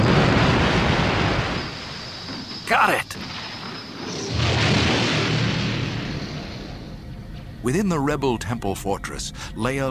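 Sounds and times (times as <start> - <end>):
explosion of a protruding structure into a ball of super-hot gas: 0.0 - 1.8, 3.4 - 7.0
speech: 2.7 - 3.4, 7.6 - 9.9.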